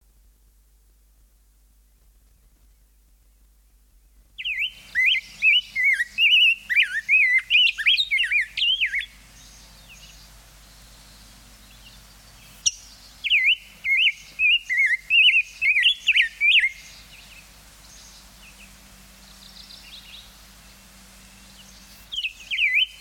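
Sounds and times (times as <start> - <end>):
songbirds: 1.6 - 22.9
rose-breasted grosbeak: 4.0 - 22.9.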